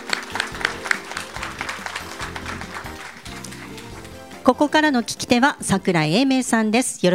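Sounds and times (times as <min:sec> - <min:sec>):
audience at an investor relations event in Tokyo clapping to welcome a speaker: 0:00.0 - 0:04.4
speech: 0:04.5 - 0:07.1.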